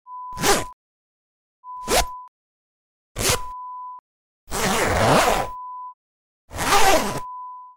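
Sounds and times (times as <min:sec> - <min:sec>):
zipper sounds: 0:00.4 - 0:00.7, 0:01.8 - 0:02.1, 0:03.2 - 0:03.5, 0:04.5 - 0:05.6, 0:06.5 - 0:07.3.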